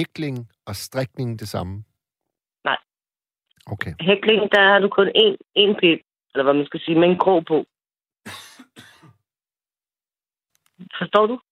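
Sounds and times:
speech: 0.0s - 1.9s, 2.6s - 2.9s, 3.7s - 8.9s, 10.8s - 11.5s
loud harsh coughs: 8.3s - 9.2s.

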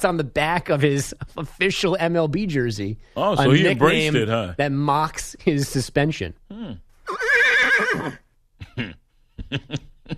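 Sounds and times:
speech: 0.0s - 7.2s, 7.8s - 10.1s
horse whinnying: 7.0s - 8.3s
laughter: 8.6s - 10.1s.

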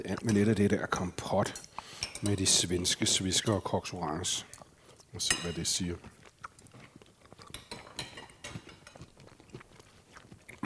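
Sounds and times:
speech: 0.0s - 6.2s
faint clink of cutlery: 1.4s - 3.7s, 5.2s - 5.8s, 7.5s - 9.1s
moist chewing of a mouthful of food: 4.4s - 10.6s.

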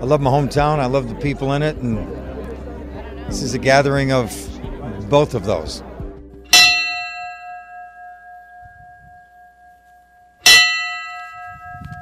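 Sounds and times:
speech: 0.0s - 2.2s, 3.3s - 4.5s, 5.1s - 5.9s
laughter: 0.0s - 6.1s
large memorial bell tolling: 6.5s - 12.0s.

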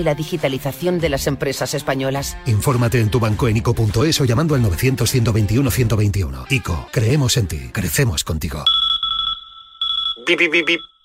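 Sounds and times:
speech: 0.0s - 8.8s, 10.3s - 10.9s
alarm clock beeping with high electronic tones: 8.7s - 11.0s
person mimicking alarm beeps with short rhythmic syllables: 9.9s - 11.0s.

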